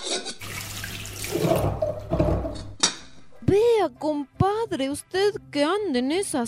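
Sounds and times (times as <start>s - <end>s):
water running from a tap filling a container: 0.4s - 2.1s
speech: 4.0s - 6.4s.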